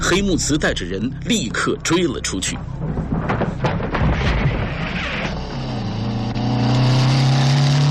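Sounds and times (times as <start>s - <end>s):
speech: 0.1s - 3.1s
motorcycle engine revving and idling: 3.9s - 7.8s.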